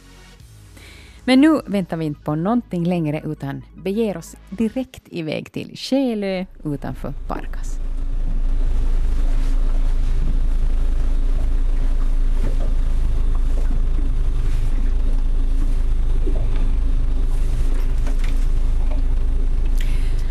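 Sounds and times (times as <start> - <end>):
speech: 1.2 - 7.8
research boat engine idling at a red boathouse on Själö off Pargas: 6.2 - 20.2.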